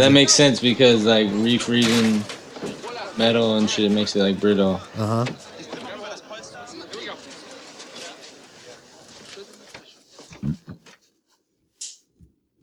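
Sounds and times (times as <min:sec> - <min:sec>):
people chatting: 0:00.0 - 0:02.3, 0:03.1 - 0:07.0
speech: 0:00.0 - 0:02.4, 0:03.2 - 0:05.5
person burping into the microphone: 0:05.0 - 0:05.4.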